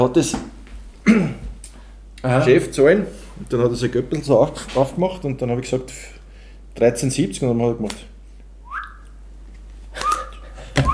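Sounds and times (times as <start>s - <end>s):
speech: 0.0s - 0.5s, 2.2s - 6.2s, 6.8s - 8.1s
person whistling short chirpy whistles imitating a restaurant customer: 8.7s - 9.0s, 10.0s - 10.9s.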